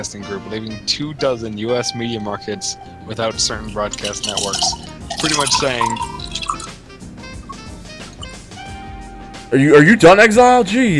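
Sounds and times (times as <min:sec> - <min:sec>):
speech: 0:00.0 - 0:06.2, 0:09.5 - 0:10.9
juice glugging and splashing into a glass: 0:03.5 - 0:06.8.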